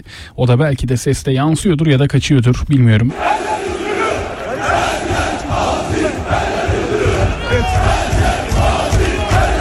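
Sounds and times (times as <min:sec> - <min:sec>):
speech: 0:00.0 - 0:03.6
large crowd chanting a football club election slogan in unison: 0:03.1 - 0:09.5.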